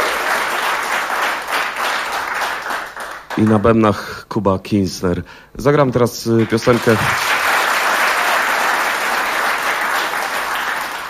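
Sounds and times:
audience applause at a live concert: 0:00.0 - 0:03.6, 0:06.4 - 0:11.0
speech: 0:03.4 - 0:07.3.

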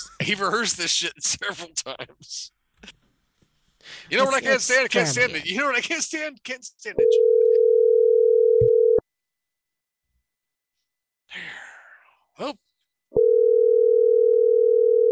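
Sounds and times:
speech: 0:00.2 - 0:03.0, 0:03.9 - 0:07.4, 0:11.3 - 0:11.6, 0:12.4 - 0:12.6
telephone dial tone before an outgoing call: 0:07.1 - 0:09.0, 0:13.2 - 0:15.0
person sighing: 0:11.3 - 0:12.2.

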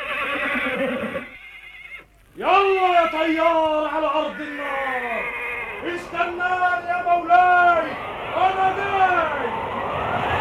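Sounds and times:
horse neighing: 0:00.0 - 0:02.1, 0:04.4 - 0:05.9
speech: 0:02.4 - 0:05.2, 0:05.8 - 0:09.6.

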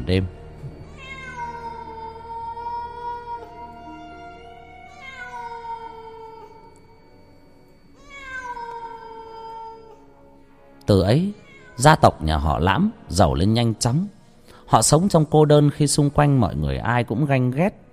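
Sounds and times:
speech: 0:00.1 - 0:00.4, 0:10.9 - 0:17.8
cat meowing in long drawn-out calls: 0:00.7 - 0:06.8, 0:08.0 - 0:10.1, 0:11.3 - 0:12.1.

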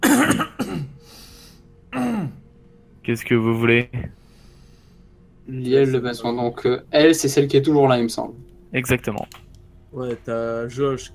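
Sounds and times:
person coughing: 0:00.0 - 0:01.0, 0:01.9 - 0:02.4
speech: 0:03.1 - 0:04.2, 0:05.5 - 0:11.1.

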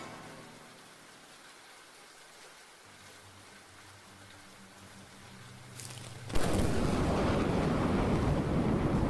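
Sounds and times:
thunder crash in a rainstorm: 0:06.3 - 0:09.0.

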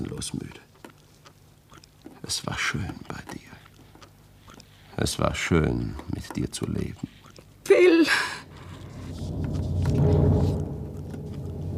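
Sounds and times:
speech: 0:00.2 - 0:00.6, 0:02.3 - 0:03.4, 0:05.0 - 0:08.4
deep rolling thunder from an approaching thunderstorm: 0:08.5 - 0:11.7.

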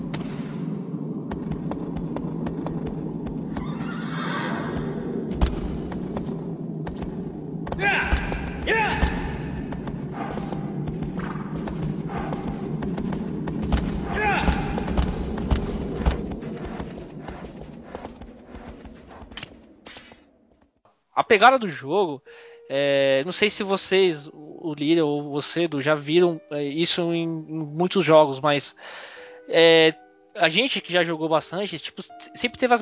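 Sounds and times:
low droning background: 0:00.0 - 0:20.8
horse hoofbeats in a video game: 0:01.2 - 0:19.7
speech: 0:21.3 - 0:32.8.

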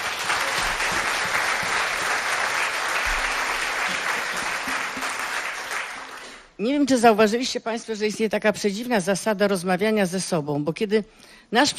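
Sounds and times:
audience applause at a live music event: 0:00.0 - 0:06.5
speech: 0:06.6 - 0:11.7.

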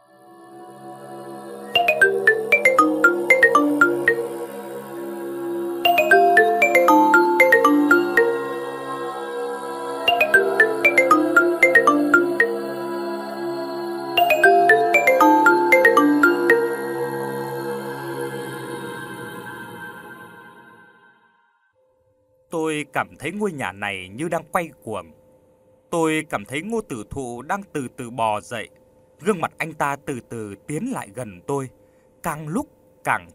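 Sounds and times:
mobile phone ringtone ringing: 0:01.8 - 0:04.6, 0:05.9 - 0:09.0, 0:10.1 - 0:13.0, 0:14.2 - 0:17.4
speech: 0:23.0 - 0:25.2, 0:25.9 - 0:33.3.

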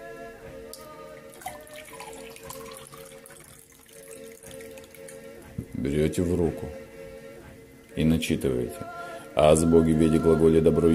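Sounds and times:
steady tonal hum: 0:00.0 - 0:10.9
water pouring into a glass holding a pebble: 0:01.3 - 0:05.3
speech: 0:05.8 - 0:06.8, 0:08.0 - 0:10.9.

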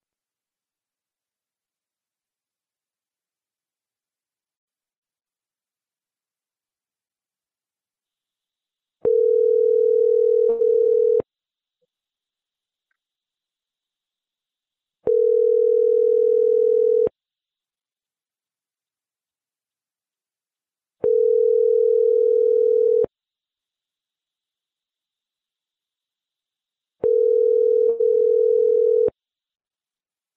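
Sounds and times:
telephone line tone on a call: 0:09.0 - 0:11.2, 0:15.1 - 0:17.1, 0:21.0 - 0:23.1, 0:27.0 - 0:29.1.

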